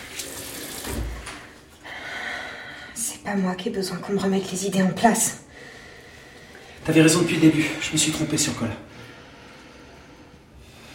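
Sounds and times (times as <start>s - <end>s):
water running from a tap: 0.0s - 1.5s
speech: 3.2s - 5.4s, 6.9s - 9.0s.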